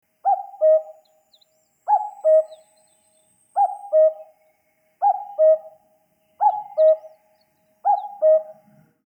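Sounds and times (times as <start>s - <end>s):
bird double hoot: 0.2s - 1.1s, 1.9s - 2.7s, 5.0s - 5.8s, 6.4s - 7.1s, 7.8s - 8.7s.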